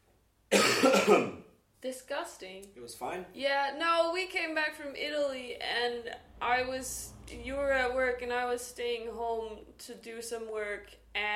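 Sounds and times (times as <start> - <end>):
harsh throaty cough: 0.5 - 1.5
speech: 0.8 - 11.3.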